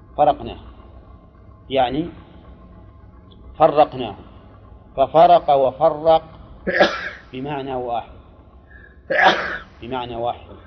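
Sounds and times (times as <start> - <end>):
speech: 0.2 - 0.8, 1.7 - 2.2, 3.6 - 4.3, 5.0 - 8.2, 9.1 - 10.6
loud person sneezing: 6.7 - 7.2, 9.1 - 9.6
faint inhale: 8.7 - 9.0.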